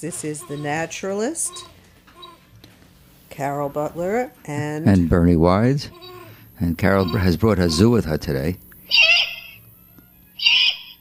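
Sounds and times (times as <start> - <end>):
speech: 0.0 - 1.8, 3.4 - 9.0
Eastern screech owl calls: 1.4 - 2.4, 6.0 - 6.4, 8.8 - 9.7, 10.4 - 10.9.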